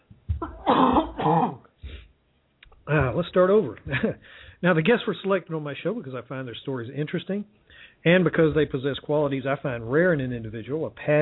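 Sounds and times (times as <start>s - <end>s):
man coughing in rough throaty bursts: 0.4s - 1.6s
speech: 3.2s - 11.2s.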